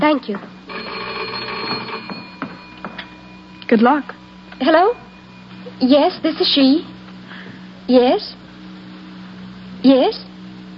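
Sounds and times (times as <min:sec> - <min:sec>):
speech: 0:00.0 - 0:00.6, 0:03.7 - 0:05.0, 0:05.8 - 0:06.9, 0:07.9 - 0:08.3, 0:09.8 - 0:10.2
telephone ringing with a steady electronic bell tone: 0:00.7 - 0:06.9.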